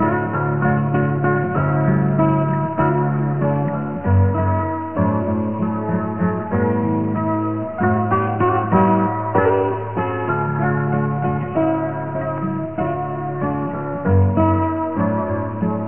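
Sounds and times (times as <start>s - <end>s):
guitar: 0.0s - 15.8s.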